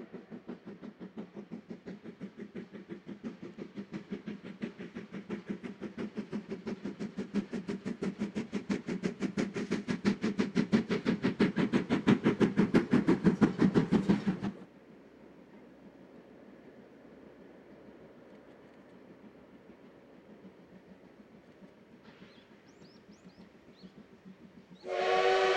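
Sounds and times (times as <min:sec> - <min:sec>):
steam locomotive hauling a train chuffing: 0:00.0 - 0:25.5.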